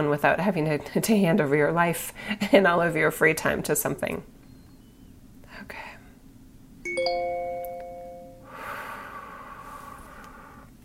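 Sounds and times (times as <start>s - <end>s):
speech: 0.0s - 4.4s
bright multi-tone electronic reminder chime: 6.9s - 8.5s
soft breathy noises: 8.4s - 10.8s.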